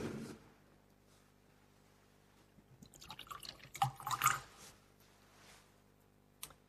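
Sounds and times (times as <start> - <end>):
small drips and splashes: 2.8 - 4.6
water poured into a chalice of wine: 2.8 - 4.6.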